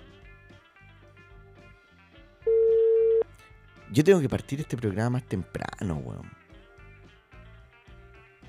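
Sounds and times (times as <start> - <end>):
phone ringback tone as a call is placed: 2.5 - 3.2
speech: 3.9 - 6.4.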